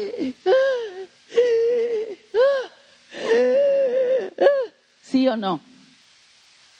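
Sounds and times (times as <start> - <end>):
person imitating loud crying and wailing: 0.0 - 4.7
speech: 5.2 - 5.7.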